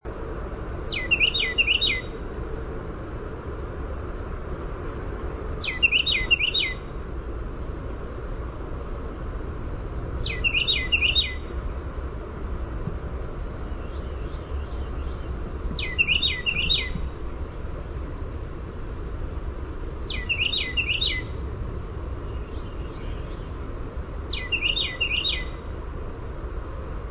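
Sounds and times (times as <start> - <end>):
Carolina wren singing: 0.1 - 2.8, 3.8 - 27.0.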